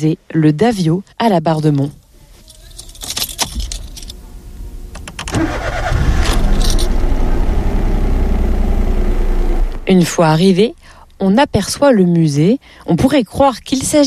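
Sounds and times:
speech: 0.0 - 2.0, 9.9 - 14.0
car keys jingling: 1.6 - 7.0
car engine starting and running on a drive through Breton marshland: 3.6 - 11.4.

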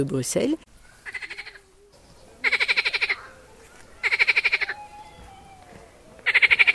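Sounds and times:
speech: 0.0 - 0.7
frog croaking by a stream: 1.0 - 1.7, 2.4 - 4.8, 6.2 - 6.7.

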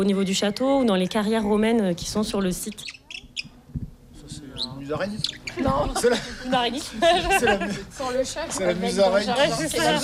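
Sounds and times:
speech: 0.0 - 3.0, 4.9 - 10.0
swallows twittering: 2.6 - 3.6, 4.4 - 5.9
laughter: 5.4 - 8.3.

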